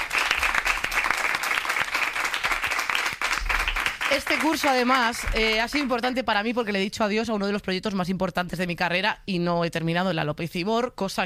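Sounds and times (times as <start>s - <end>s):
audience applauding: 0.0s - 6.0s
speech: 4.1s - 11.2s.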